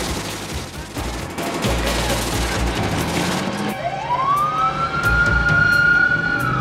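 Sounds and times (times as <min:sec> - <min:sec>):
dense loud traffic rumble of stopped traffic: 0:01.2 - 0:06.6
wailing siren of an ambulance and a fire engine speeding by: 0:03.6 - 0:06.6.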